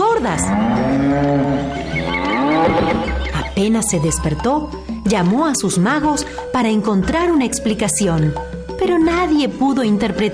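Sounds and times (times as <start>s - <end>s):
speech: 0.2s - 3.0s, 3.6s - 10.3s
cattle mooing: 0.2s - 3.5s.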